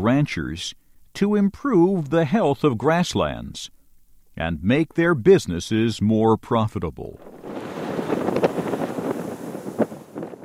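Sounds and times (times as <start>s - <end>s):
speech: 0.0s - 3.8s, 4.4s - 7.4s
wind blowing through native prairie grasses in Niobrara Valley, Nebraska: 7.2s - 10.4s.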